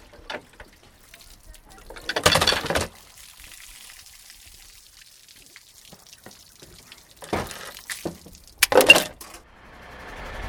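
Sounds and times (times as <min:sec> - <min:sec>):
water spraying from a C hose fighting a burning car: 0:00.5 - 0:08.7
sharp metallic clanks during a youth fire brigade drill: 0:08.6 - 0:09.5.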